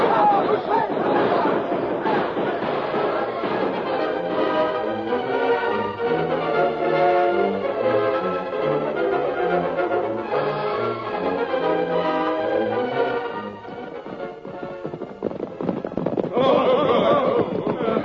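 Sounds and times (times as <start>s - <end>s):
gunfire in a western radio drama shootout: 0.0s - 5.8s
music: 0.0s - 18.0s
laughter: 16.3s - 18.0s.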